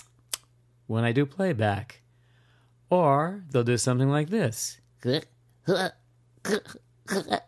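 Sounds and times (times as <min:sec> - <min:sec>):
faint steady low hum: 0:00.0 - 0:07.4
speech: 0:00.9 - 0:02.0, 0:02.9 - 0:07.4
human voice imitating a cat retching before coughing up a hairball: 0:05.1 - 0:07.4.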